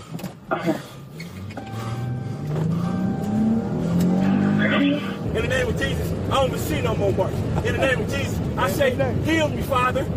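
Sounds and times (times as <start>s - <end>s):
speech: 0.5s - 1.0s, 4.8s - 10.1s
car engine cranking, revving and pulling away: 1.0s - 10.1s.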